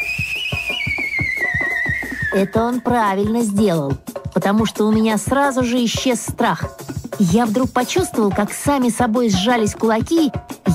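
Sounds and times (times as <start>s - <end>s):
loud human whistling: 0.0s - 2.9s
speech: 2.3s - 10.5s.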